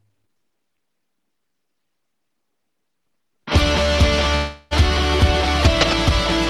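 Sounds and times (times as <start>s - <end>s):
loud distorted rock music: 3.5s - 6.4s.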